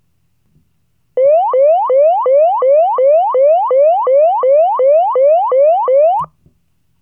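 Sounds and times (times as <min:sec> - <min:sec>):
yelp siren: 0:01.2 - 0:06.3.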